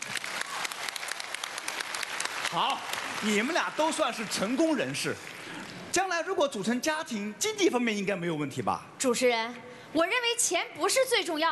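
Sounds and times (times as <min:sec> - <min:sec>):
audience applauding on a dating-show stage: 0:00.0 - 0:06.0
speech: 0:02.5 - 0:11.5.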